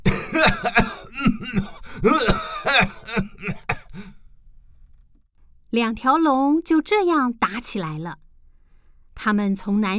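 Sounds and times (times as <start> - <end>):
person coughing from choking on smoke: 0.0 - 4.2
person gasping: 0.3 - 4.2
speech: 1.5 - 2.3, 5.8 - 8.2, 9.2 - 9.9.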